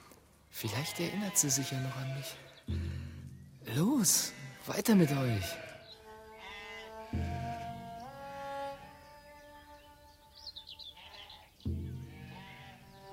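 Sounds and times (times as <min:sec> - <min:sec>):
flock of sheep bleating: 0:00.6 - 0:02.8, 0:04.1 - 0:08.9, 0:11.0 - 0:13.1
speech: 0:00.6 - 0:03.0, 0:03.6 - 0:05.7, 0:07.1 - 0:07.5.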